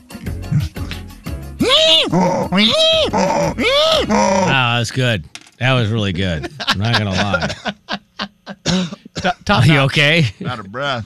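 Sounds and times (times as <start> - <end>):
person imitating a donkey braying hee-haw: 0.4 - 0.9, 1.6 - 4.8
speech: 1.9 - 7.8, 8.7 - 11.0
laughter: 6.2 - 8.7.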